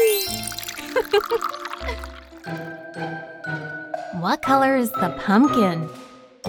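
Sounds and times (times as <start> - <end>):
tea pouring into a cup: 0.0 - 2.8
speech: 4.2 - 6.0.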